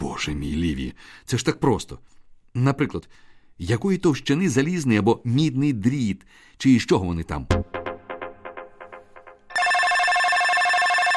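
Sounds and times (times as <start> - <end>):
speech: 0.2 - 7.8
telephone ringing: 9.5 - 11.1.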